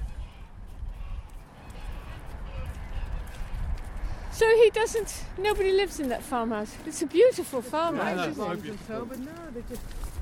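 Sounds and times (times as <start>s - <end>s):
geese honking: 0.0s - 3.6s
speech: 4.4s - 10.1s.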